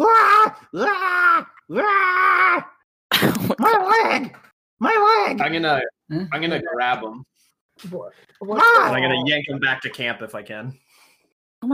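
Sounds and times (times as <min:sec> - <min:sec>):
voice imitating a severely injured kobold screaming: 0:00.0 - 0:02.8, 0:03.6 - 0:05.9, 0:08.4 - 0:09.2
speech: 0:00.7 - 0:02.2, 0:04.0 - 0:11.0, 0:11.6 - 0:11.7.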